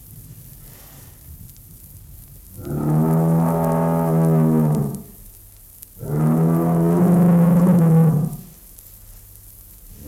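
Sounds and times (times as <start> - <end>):
bull mooing: 2.6 - 5.1, 6.0 - 8.5.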